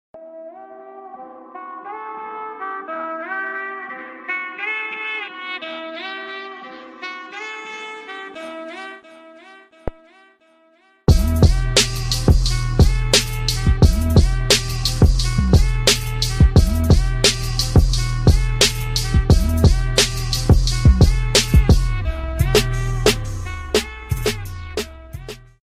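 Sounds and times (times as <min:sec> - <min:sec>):
trap beat: 0:11.1 - 0:25.6.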